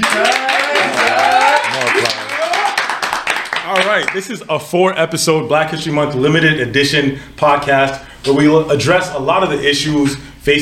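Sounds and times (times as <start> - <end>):
crowd clapping: 0.0 - 4.3
voices cheering and calling out: 0.0 - 4.3
speech: 0.2 - 0.4, 4.0 - 10.6.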